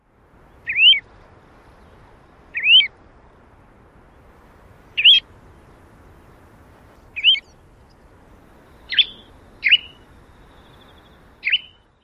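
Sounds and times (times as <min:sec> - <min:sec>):
Pacific Golden-Plover calls: 0:00.5 - 0:01.1, 0:01.8 - 0:02.9, 0:05.0 - 0:05.2, 0:07.0 - 0:08.1, 0:08.7 - 0:12.0.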